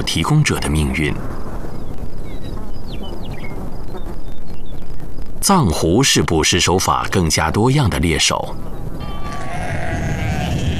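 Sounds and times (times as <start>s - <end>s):
speech: 0.0s - 1.5s, 5.4s - 9.0s
flock of herders' sheep bleating on a high mountain grassland: 9.0s - 10.7s.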